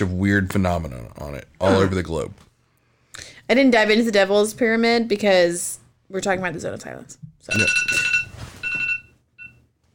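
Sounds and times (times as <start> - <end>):
speech: 0.0 - 2.4, 3.5 - 8.0
phone alarm beeping: 7.5 - 9.6.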